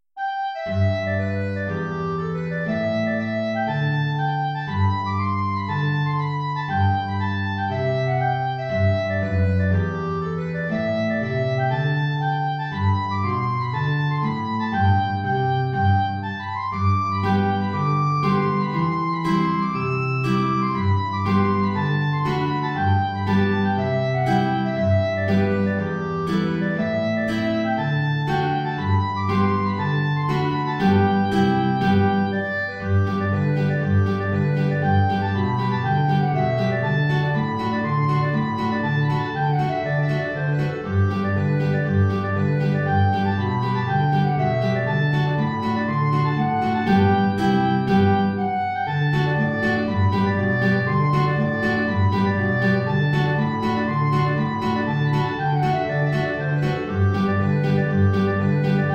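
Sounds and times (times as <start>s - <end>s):
B flat clarinet: 0.0s - 58.9s
guitar: 0.2s - 58.9s.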